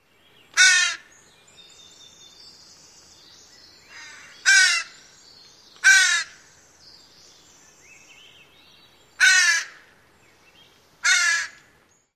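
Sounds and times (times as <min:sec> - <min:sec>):
Northwestern Crow calls: 0:00.5 - 0:01.1, 0:03.9 - 0:05.0, 0:05.8 - 0:06.5, 0:09.2 - 0:10.0, 0:11.0 - 0:11.8.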